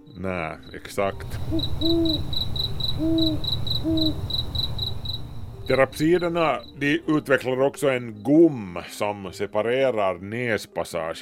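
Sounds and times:
crickets chirping: 0.0s - 8.4s
speech: 0.2s - 4.3s, 5.7s - 11.2s
owl hooting: 1.1s - 6.8s.

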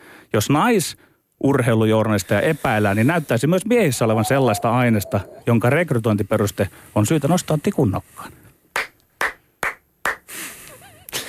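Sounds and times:
speech: 0.3s - 8.4s
slow sharp hand claps: 8.7s - 10.3s.

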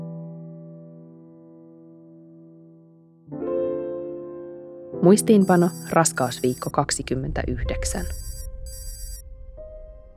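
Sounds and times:
speech: 5.0s - 8.3s
mobile phone ringtone for an incoming call: 5.4s - 6.7s, 8.0s - 9.2s.

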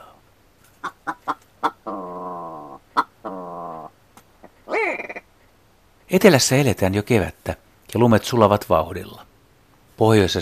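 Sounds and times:
male willow ptarmigan calling: 0.8s - 5.3s
speech: 6.1s - 9.2s, 10.0s - 10.3s.

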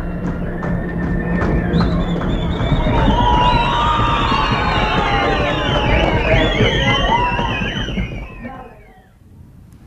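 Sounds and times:
cinema audience cheering: 0.0s - 9.1s
cinema audience stamping feet: 0.0s - 9.1s
cinema audience shrill whistles: 0.0s - 9.2s
cinema audience voices shouting: 2.1s - 9.0s.

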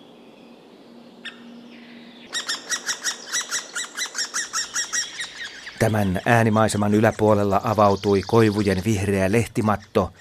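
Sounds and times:
white-backed woodpecker chicks begging calls in a birch forest in Nastola Finland: 2.2s - 10.1s
speech: 5.8s - 10.1s.

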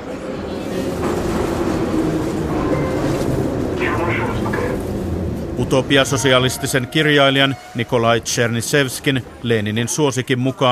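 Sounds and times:
moving metro carriage rumble in St Petersburg Russia: 0.0s - 10.6s
indistinct voices of passengers: 0.3s - 10.6s
speech: 5.6s - 10.6s.

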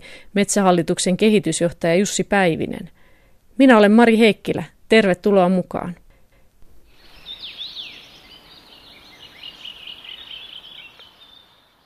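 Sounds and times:
speech: 0.3s - 3.0s, 3.6s - 6.0s
birds singing in a protected forest: 6.9s - 11.8s.

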